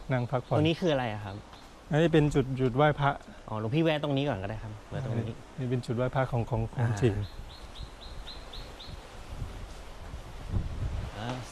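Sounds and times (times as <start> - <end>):
bird chirping: 0.0 - 2.4, 6.3 - 9.2
speech: 0.1 - 7.6
wind buffeting the microphone at a scenic viewpoint in Hua Hin Thailand: 6.1 - 11.4.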